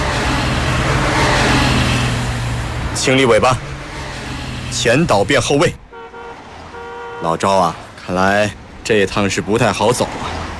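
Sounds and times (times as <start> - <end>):
convoy of cars driving straight past without slowing down: 0.0 - 10.5
speech: 3.0 - 3.7, 4.7 - 5.8, 7.2 - 10.4.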